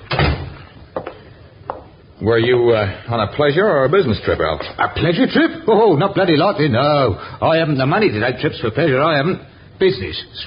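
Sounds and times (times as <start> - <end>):
door shutting with a dull thud: 0.0 - 0.6
speech: 2.2 - 10.4.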